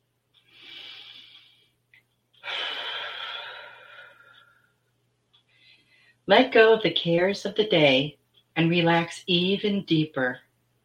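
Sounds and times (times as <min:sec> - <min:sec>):
deep breath in and out during a guided relaxation exercise: 0:00.5 - 0:01.8, 0:02.4 - 0:04.9, 0:05.5 - 0:06.2
speech: 0:06.3 - 0:10.4.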